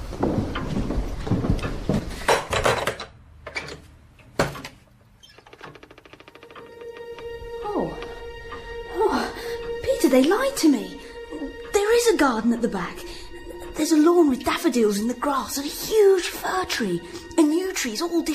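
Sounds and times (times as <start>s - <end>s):
back door hinges creaking: 0.4s - 8.9s
back door latch knocking and rattling: 4.4s - 7.2s
speech: 10.1s - 11.0s, 12.1s - 13.2s, 13.8s - 17.2s, 17.8s - 18.3s.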